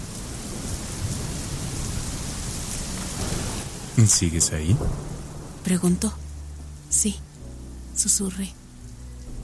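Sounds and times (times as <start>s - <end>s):
thunder rumbling: 0.0s - 7.0s
steady rain: 0.0s - 9.4s
speech: 4.0s - 6.2s, 7.0s - 7.3s, 8.0s - 8.6s.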